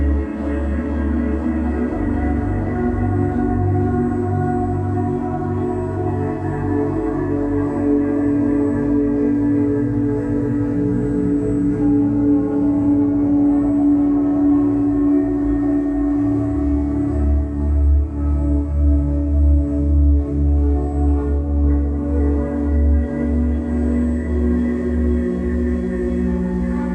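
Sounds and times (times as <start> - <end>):
sustained ambient guitar drone with layered low tones: 0.0 - 26.9.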